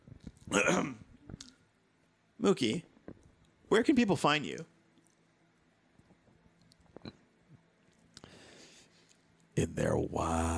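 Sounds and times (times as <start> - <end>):
speech: 0.5 - 1.0, 2.4 - 2.9, 3.7 - 4.7, 9.6 - 10.5
person clearing throat close to the mic: 0.5 - 1.1.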